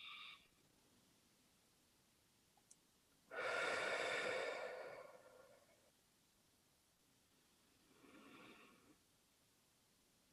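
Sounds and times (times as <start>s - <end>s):
slow deliberate breathing in and out during exercise: 3.3s - 5.9s, 7.8s - 9.0s.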